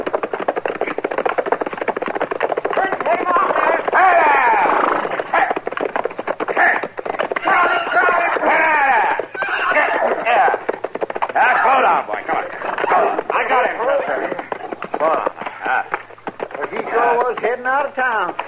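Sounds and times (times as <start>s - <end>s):
runaway horse galloping hooves: 0.0s - 18.4s
voices calling out: 2.8s - 5.7s, 6.5s - 18.4s.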